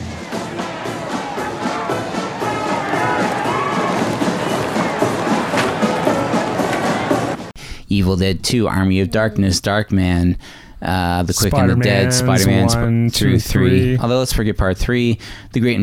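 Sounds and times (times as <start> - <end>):
large crowd of hostile protesters murmuring and shouting on a city street: 0.0 - 7.4
speech: 7.9 - 15.8.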